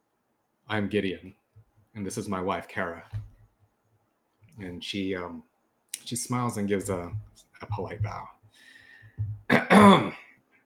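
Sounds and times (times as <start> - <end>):
speech: 0.7 - 1.4, 2.0 - 3.2, 4.6 - 8.4, 9.2 - 10.2
man coughing behind a bar: 9.5 - 10.3.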